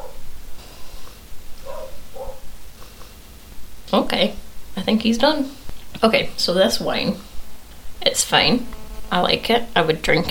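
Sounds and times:
dog barks from upstairs: 0:00.0 - 0:03.2
low room hum: 0:00.0 - 0:10.2
speech: 0:03.9 - 0:07.3, 0:08.1 - 0:10.2.

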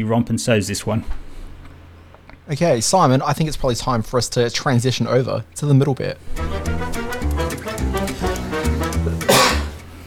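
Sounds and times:
speech: 0:00.0 - 0:01.3, 0:02.5 - 0:08.0
steady rhythmic music bed: 0:06.2 - 0:10.0
single sharp cough: 0:09.2 - 0:09.8.

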